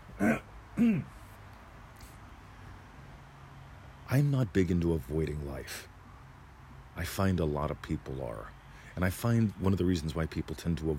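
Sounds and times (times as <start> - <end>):
person clearing throat: 0.2 - 1.2
speech: 0.2 - 1.2, 4.1 - 5.9, 7.0 - 10.9.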